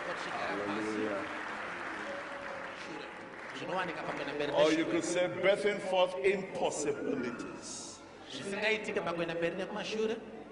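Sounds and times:
crowd clapping: 0.0 - 5.1
speech: 3.7 - 7.8, 8.4 - 10.3.

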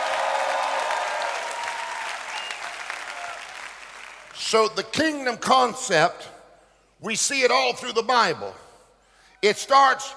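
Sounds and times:
audience clapping at a religious gathering: 0.0 - 4.4
speech: 4.5 - 6.4, 7.0 - 8.6, 9.4 - 10.1.

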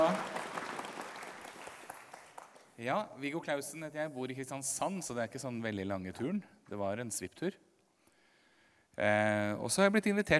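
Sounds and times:
audience clapping: 0.0 - 2.8
speech: 2.8 - 7.7, 9.0 - 10.3.

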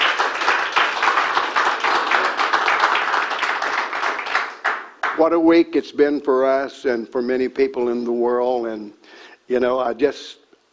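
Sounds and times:
crowd applauding: 0.0 - 5.3
speech: 5.2 - 10.7.

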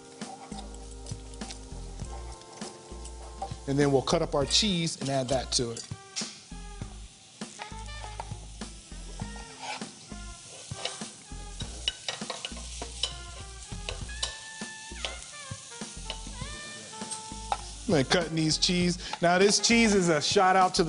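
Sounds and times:
oatmeal being stirred in a pan: 0.0 - 3.6, 7.6 - 8.4, 9.0 - 18.3
oatmeal with butter cooking in a pan: 0.0 - 20.8
speech: 3.7 - 5.9, 17.9 - 20.8.

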